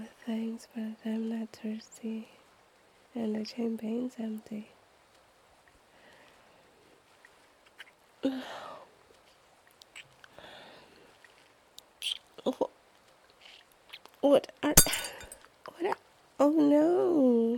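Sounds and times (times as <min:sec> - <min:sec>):
speech: 0:00.3 - 0:02.4, 0:03.2 - 0:04.8, 0:08.2 - 0:08.8, 0:12.4 - 0:12.8, 0:14.2 - 0:15.1, 0:15.8 - 0:17.5
glass breaking and shattering: 0:14.8 - 0:15.4
quiet glass clinks: 0:14.8 - 0:15.4.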